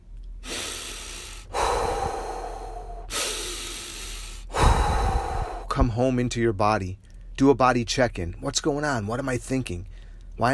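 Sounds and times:
deep breaths: 0:00.4 - 0:05.9, 0:09.9 - 0:10.4
speech: 0:05.8 - 0:10.5.

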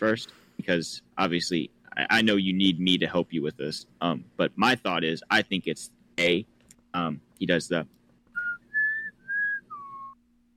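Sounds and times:
speech: 0:00.0 - 0:08.0
faint low hum: 0:00.0 - 0:10.5
person whistling a short four-note tune: 0:08.4 - 0:10.2.

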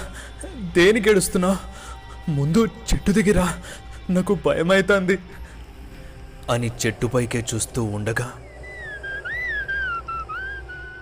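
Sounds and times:
speech: 0:00.7 - 0:01.7, 0:02.3 - 0:05.4, 0:06.5 - 0:08.4
person whistling a wavering tune: 0:08.4 - 0:11.0.

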